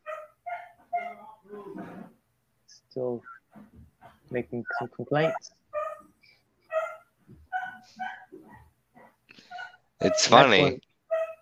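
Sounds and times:
dog barking and yipping: 0.0 - 1.2, 5.2 - 6.1, 6.7 - 10.4, 11.1 - 11.4
speech: 2.8 - 3.4, 4.3 - 5.6, 10.0 - 10.8.

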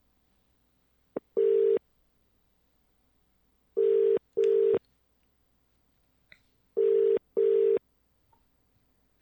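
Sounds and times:
double-burst phone ringback tone: 1.4 - 1.8, 3.8 - 4.8, 6.8 - 7.8.

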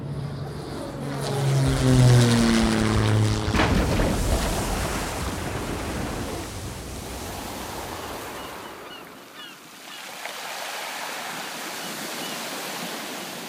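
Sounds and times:
airplane emergency landing sound effect: 0.0 - 9.5.

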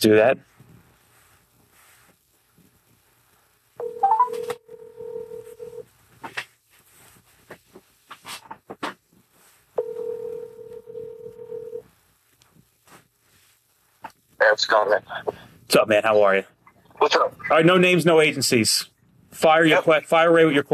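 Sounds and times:
speech: 0.0 - 0.6, 14.4 - 20.7
outgoing phone call ringing tones: 3.8 - 5.8, 9.8 - 11.8.

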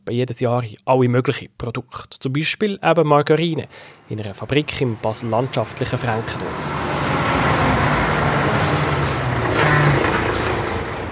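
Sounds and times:
speech: 0.1 - 6.9
large palm oil delivery truck engine idling at a margarine factory: 3.7 - 11.0
truck air brakes hissing: 8.5 - 10.1.

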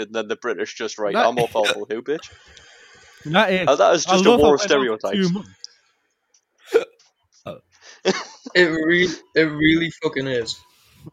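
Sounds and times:
speech: 0.0 - 2.6, 3.2 - 5.6, 6.7 - 11.1
person hiccuping: 1.2 - 1.8, 6.7 - 7.6.

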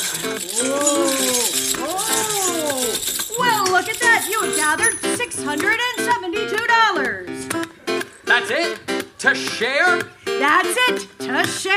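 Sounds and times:
coins rattling and clinking into a counting machine: 0.0 - 6.3
speech: 0.2 - 1.0, 3.8 - 7.7, 8.3 - 11.7.

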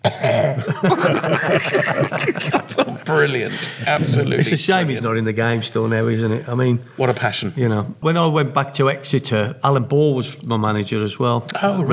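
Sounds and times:
person imitating a footballer with a cold coughing: 0.0 - 3.0
laughter: 0.5 - 5.2
speech: 0.8 - 11.9.

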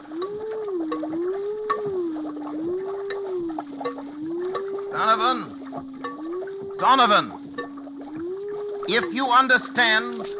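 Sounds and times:
brain delta waves rendered as low electronic tone warbling: 0.0 - 10.3
faint crackling static: 0.0 - 10.3
speech: 5.1 - 5.5, 6.8 - 7.4, 8.9 - 10.3.

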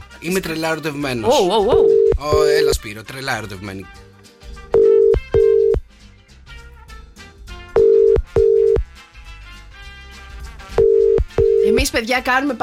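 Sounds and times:
music: 0.0 - 12.6
speech: 0.2 - 4.1, 11.9 - 12.6
telephone ringback tone in paired bursts: 1.7 - 2.8, 4.8 - 5.8, 7.8 - 8.8, 10.8 - 11.7.

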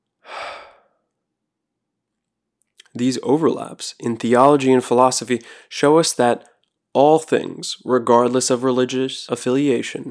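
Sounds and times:
soft breathy exhale: 0.2 - 1.0
speech: 3.0 - 10.0.

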